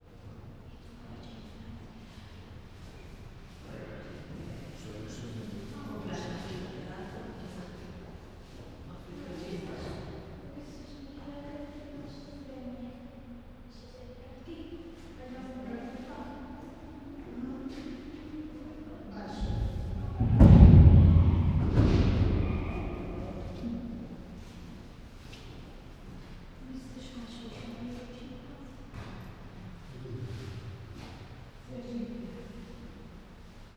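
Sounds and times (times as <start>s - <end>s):
visitors banging at the monkey house in a zoo: 19.4s - 24.2s.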